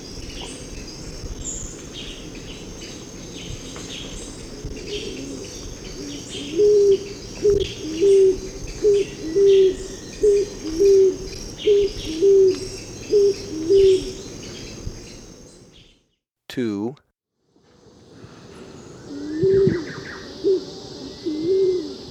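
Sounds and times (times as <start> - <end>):
high-pitched insect chorus in Ecuador: 0.0 - 16.0, 17.6 - 22.0
scaled pigeon cooing in Ecuador: 4.6 - 14.2, 19.1 - 22.0.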